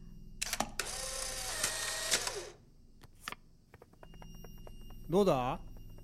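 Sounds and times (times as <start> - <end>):
instant camera mechanical clicks: 0.4 - 2.5
speech: 5.1 - 5.7.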